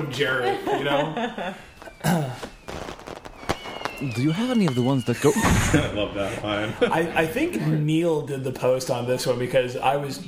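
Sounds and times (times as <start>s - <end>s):
laughter: 0.0s - 2.5s, 4.8s - 8.0s
speech: 0.0s - 2.5s, 4.0s - 10.2s
fireworks going off with a sharp loud bang: 1.6s - 7.2s.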